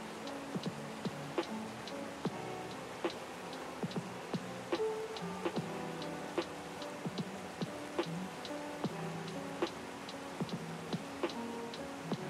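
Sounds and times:
soft lo-fi music with mellow sustained chords: 0:00.0 - 0:12.2
waterfall: 0:00.0 - 0:12.2.

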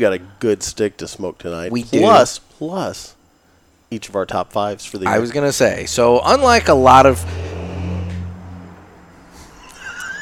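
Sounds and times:
speech: 0:00.0 - 0:03.2, 0:03.9 - 0:07.4
traffic noise: 0:05.1 - 0:10.2
heavy vehicle rumbling past on a street: 0:06.2 - 0:09.4.

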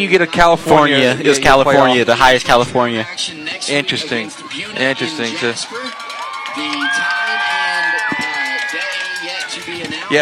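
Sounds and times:
speech: 0:00.0 - 0:05.8
large stadium crowd of football fans cheering: 0:03.1 - 0:10.1
scattered shouts from football fans: 0:04.1 - 0:10.1.

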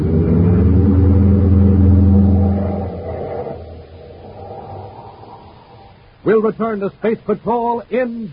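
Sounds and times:
car engine roaring while driven toward a fuel tank: 0:00.0 - 0:06.1
speech: 0:06.3 - 0:08.3.

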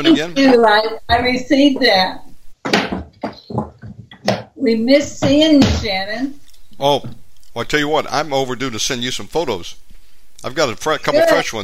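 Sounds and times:
speech: 0:00.0 - 0:02.2, 0:04.6 - 0:09.8, 0:10.4 - 0:11.6
chair being moved, scraping and knocking: 0:00.5 - 0:04.6.

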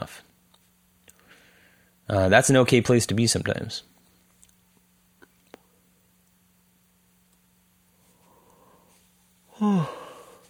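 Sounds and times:
quiet breathy inhale: 0:01.2 - 0:02.0, 0:08.2 - 0:10.4
speech: 0:02.1 - 0:04.0
loud voiced yawn: 0:09.5 - 0:10.4.

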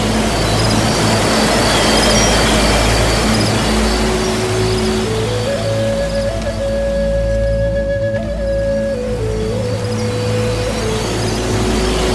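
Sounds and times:
rushing water of streams and waterfall: 0:00.0 - 0:12.1
wooden Native American flute playing slow held notes: 0:00.0 - 0:12.1.

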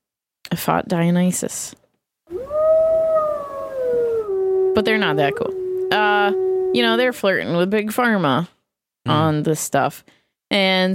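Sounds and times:
speech: 0:00.5 - 0:01.8, 0:04.8 - 0:05.6, 0:06.2 - 0:10.9
wolf howling: 0:02.3 - 0:07.4.

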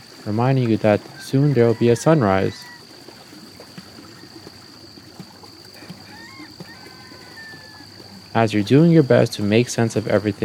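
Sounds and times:
water sloshing around a rowboat pushed off with an oar: 0:00.0 - 0:10.4
speech: 0:00.2 - 0:02.7, 0:08.4 - 0:10.4
soft knocks and splashes of a rowboat and oar: 0:02.6 - 0:08.3.

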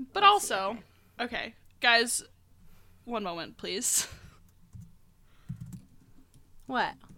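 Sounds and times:
speech: 0:00.1 - 0:02.4, 0:03.1 - 0:04.2, 0:06.7 - 0:07.1
quiet keyboard typing by two people: 0:04.3 - 0:07.1.

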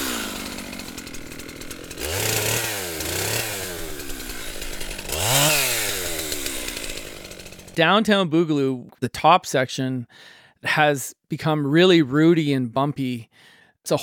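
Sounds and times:
chainsaw idling and revving as it cuts into wood: 0:00.0 - 0:07.8
speech: 0:07.8 - 0:14.0.

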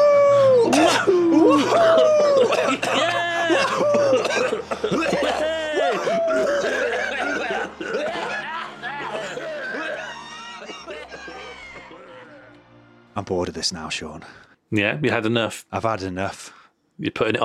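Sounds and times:
several people coughing loudly: 0:00.6 - 0:12.4
bursts of laughter and snickering: 0:00.6 - 0:12.5
speech: 0:13.3 - 0:17.4.

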